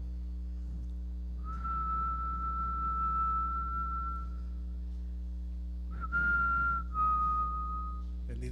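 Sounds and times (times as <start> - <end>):
low hum: 0.0 - 8.5
person whistling in imitation of an Amazon bird: 1.4 - 4.4, 6.0 - 8.0.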